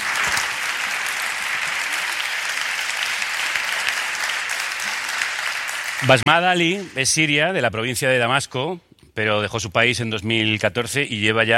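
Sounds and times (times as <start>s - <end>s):
audience applause: 0.0s - 7.3s
speech: 6.0s - 11.5s.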